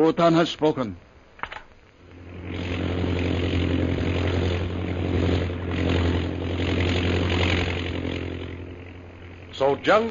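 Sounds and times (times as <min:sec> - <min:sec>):
speech: 0:00.0 - 0:01.1, 0:09.6 - 0:10.0
chartered propeller plane engine droning: 0:00.1 - 0:10.0.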